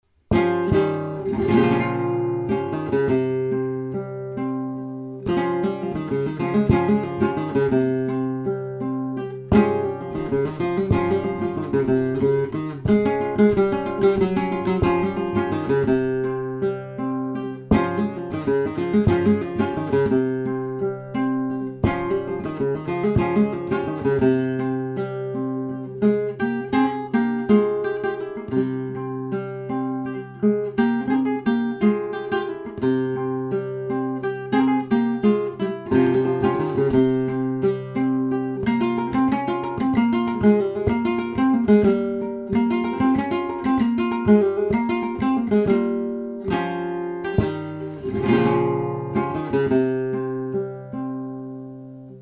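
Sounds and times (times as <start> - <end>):
seguiria flamenco music: 0.1 - 52.1.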